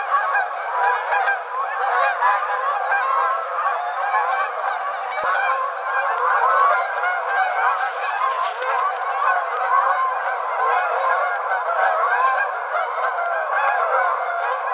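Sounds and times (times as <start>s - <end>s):
Canada geese honking: 0.0s - 14.7s
burst of noise: 7.4s - 9.6s.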